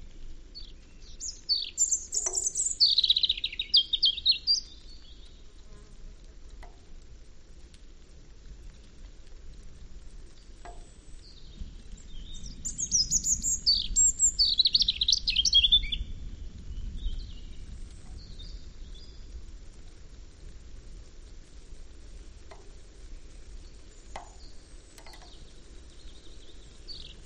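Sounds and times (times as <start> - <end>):
European robin song: 0.6 - 5.9, 10.7 - 19.1, 22.5 - 27.2.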